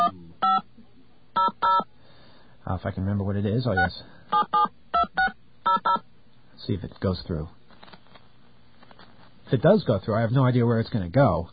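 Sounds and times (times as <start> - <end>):
telephone keypad DTMF tones dialing a number: 1.4 - 1.8, 4.3 - 6.0
speech: 2.7 - 4.6, 6.6 - 7.6, 9.5 - 11.5.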